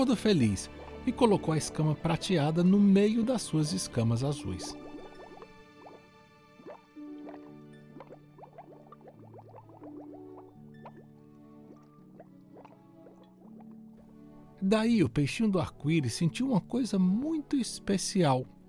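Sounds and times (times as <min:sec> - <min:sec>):
speech: 0:00.0 - 0:04.8, 0:14.7 - 0:18.6
soft sustained musical notes: 0:00.0 - 0:18.6
stream of underwater bubbles gurgling and popping: 0:04.4 - 0:14.0.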